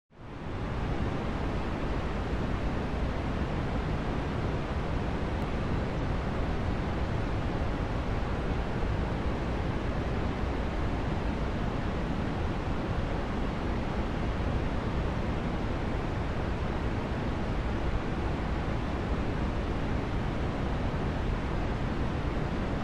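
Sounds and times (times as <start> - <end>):
white noise: 0.1 - 22.8.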